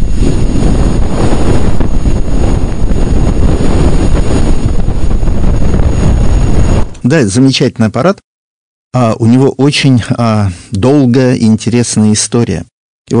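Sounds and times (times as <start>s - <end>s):
sonified solar wind recorded near Venus by the BepiColombo spacecraft: 0.0s - 7.4s
speech: 7.1s - 8.3s, 8.9s - 13.1s.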